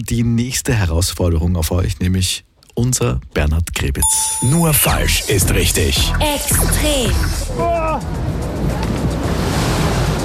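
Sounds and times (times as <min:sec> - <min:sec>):
speech: 0:00.0 - 0:09.4
water ride at an amusement park splashing and churning: 0:08.1 - 0:10.2.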